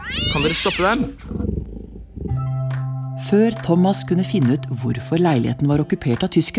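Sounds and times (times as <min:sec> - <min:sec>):
cat yowling in a radio studio: 0:00.0 - 0:01.2
cat hissing: 0:00.0 - 0:01.7
cat growling in a radio studio: 0:00.0 - 0:02.6
speech: 0:00.1 - 0:01.4, 0:03.3 - 0:06.5.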